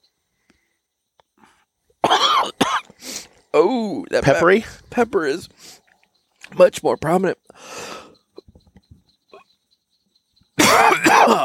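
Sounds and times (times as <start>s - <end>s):
faint coughs: 2.0s - 2.9s, 10.6s - 11.4s
speech: 3.6s - 5.8s, 6.6s - 7.8s.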